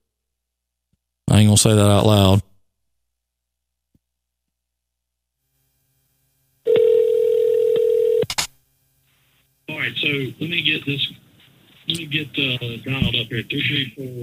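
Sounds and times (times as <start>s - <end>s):
speech: 1.3s - 2.5s, 10.1s - 11.2s, 11.9s - 14.2s
telephone dial tone on a live radio show: 6.7s - 8.3s.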